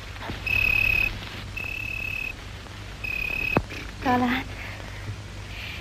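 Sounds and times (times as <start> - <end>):
cricket trills: 0.4 - 2.4, 3.0 - 3.9
speech: 4.1 - 4.6.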